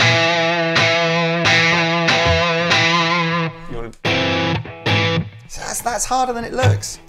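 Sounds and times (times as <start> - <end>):
heavily distorted electric guitar chords strummed for rock: 0.0 - 5.4
speech: 6.0 - 7.0.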